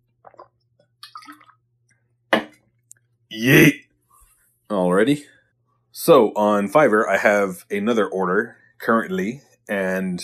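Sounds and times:
liquid splash: 0.2 - 1.6
wet sips and gulps from an aluminum water bottle: 0.2 - 1.6
speech: 3.3 - 3.8, 5.0 - 5.4, 6.0 - 10.2.

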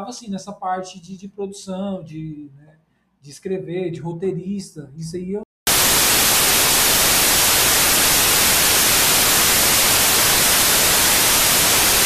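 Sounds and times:
speech: 0.0 - 5.4
radio interference static hiss: 5.7 - 12.0.

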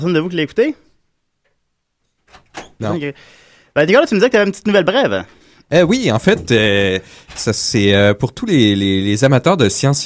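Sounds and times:
speech: 0.0 - 0.9, 2.6 - 10.0
door swinging shut: 2.2 - 2.9, 6.0 - 7.8.

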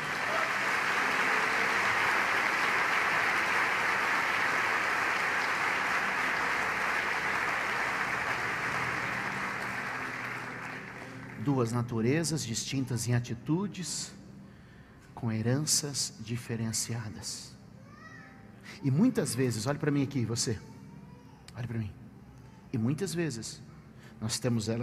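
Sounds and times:
large crowd clapping: 0.0 - 11.6
speech: 11.5 - 14.2, 15.2 - 17.6, 18.8 - 20.7, 21.6 - 22.0, 22.7 - 24.8.

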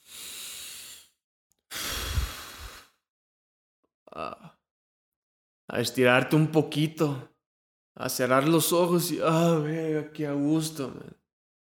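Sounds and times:
deep slow breathing during a relaxation moment: 0.0 - 3.0
speech: 5.7 - 7.3, 8.0 - 11.2.

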